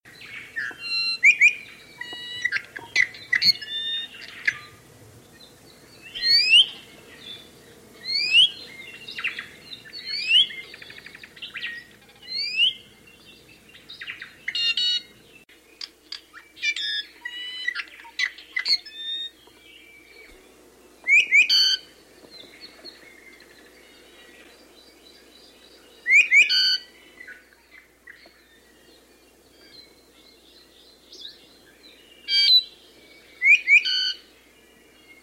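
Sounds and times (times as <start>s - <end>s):
Iiwi bird: 0.1s - 35.2s.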